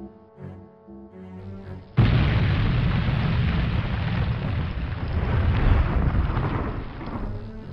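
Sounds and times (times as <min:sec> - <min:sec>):
explosion destroying tractor beam controls with heavy rumbling roar: 0:02.0 - 0:07.5.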